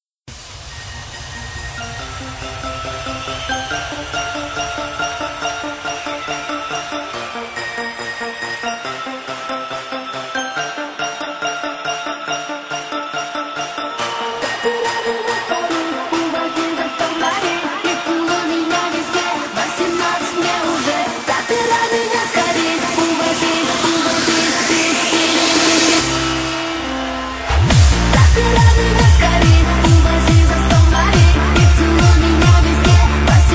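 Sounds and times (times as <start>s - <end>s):
music: 0.3s - 33.5s.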